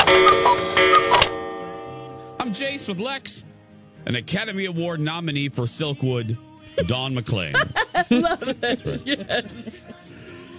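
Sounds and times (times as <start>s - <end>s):
cuckoo clock ticking: 0.0s - 2.9s
sustained ringing musical tone: 0.0s - 3.2s
speech: 2.5s - 10.1s
laughter: 7.5s - 10.2s.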